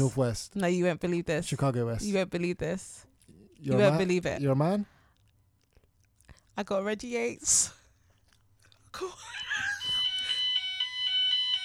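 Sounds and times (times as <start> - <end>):
speech: 0.0 - 4.9, 6.6 - 7.8, 9.0 - 9.7
jumble of noise: 0.0 - 11.6
fire alarm ringing with a shrill steady electronic tone: 9.6 - 11.6.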